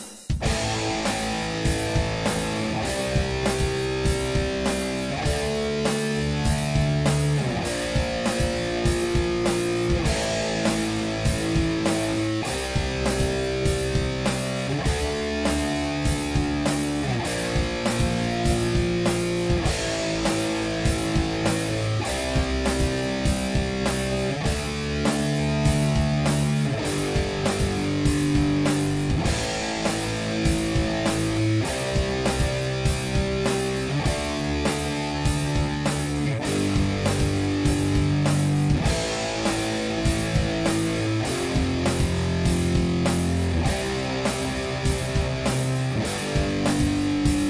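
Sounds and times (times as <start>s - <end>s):
beginner power chords: 0.4s - 47.4s.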